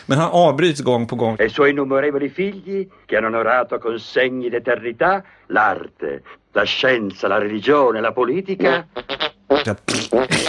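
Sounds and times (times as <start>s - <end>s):
speech: 0.1s - 10.4s
fart noises: 8.6s - 10.4s.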